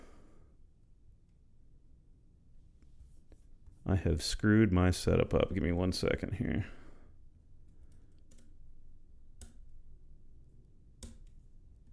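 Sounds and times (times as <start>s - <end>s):
speech: 3.9s - 6.8s
computer keyboard key presses: 7.9s - 8.6s.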